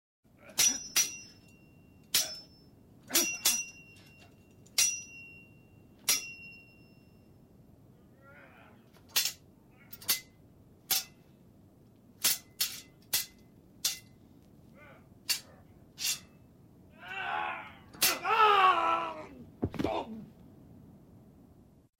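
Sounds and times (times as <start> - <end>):
two people fencing in a staged fight: 0.5 - 6.8, 8.9 - 11.2, 12.2 - 14.2, 15.3 - 16.4, 17.9 - 18.4
person screaming: 16.9 - 20.3.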